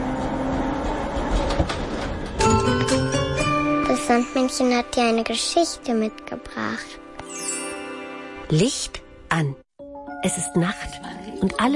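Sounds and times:
tram running on rails: 0:00.0 - 0:05.2
speech: 0:04.1 - 0:07.0, 0:08.5 - 0:09.6, 0:10.2 - 0:11.7.

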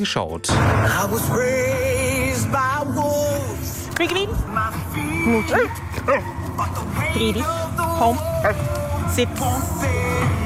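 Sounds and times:
speech: 0:00.0 - 0:10.0
three-year-old Border Collie barking and yipping: 0:05.3 - 0:06.4.

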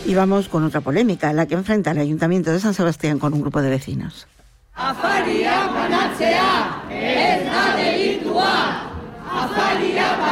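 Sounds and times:
speech: 0:00.0 - 0:10.3
street protest crowd in San Sebastián chanting and shouting: 0:04.7 - 0:10.3.

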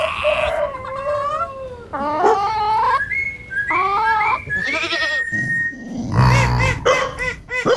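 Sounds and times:
other farm animal cries: 0:00.0 - 0:07.7
pet goat bleating: 0:04.6 - 0:05.4.

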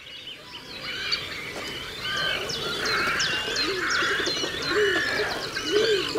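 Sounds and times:
great cormorants calling with hoarse guttural croaks: 0:02.1 - 0:06.1.

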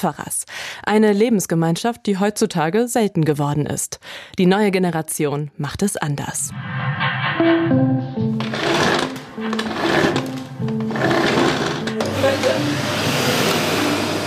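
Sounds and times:
speech: 0:00.0 - 0:08.8
vacuum cleaner motor whining and roaring: 0:08.5 - 0:14.2.

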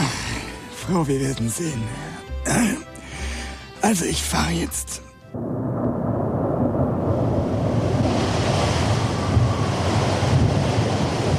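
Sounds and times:
speech: 0:00.9 - 0:02.9, 0:03.8 - 0:05.5
gusting storm wind: 0:05.2 - 0:11.3
heavy sea surf crashing in a storm: 0:05.4 - 0:11.3.

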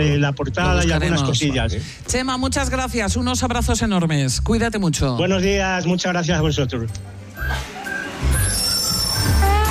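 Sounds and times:
speech: 0:00.0 - 0:07.7
train wheels squealing at a station in Santander: 0:07.4 - 0:09.6.

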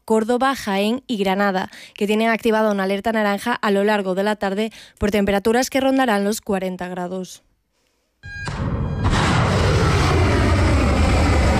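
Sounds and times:
speech: 0:00.1 - 0:07.5
aircraft taking off at night: 0:08.3 - 0:11.5
missile launches at night: 0:08.3 - 0:11.5.

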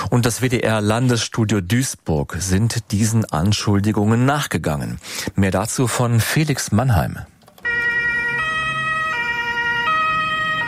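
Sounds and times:
speech: 0:00.1 - 0:07.3
ambulance siren alternating between two tones: 0:07.6 - 0:10.6.

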